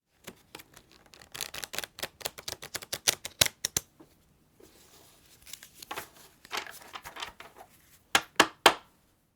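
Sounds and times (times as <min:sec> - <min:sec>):
practice shuffling cards: 0:00.2 - 0:03.9, 0:04.9 - 0:08.0.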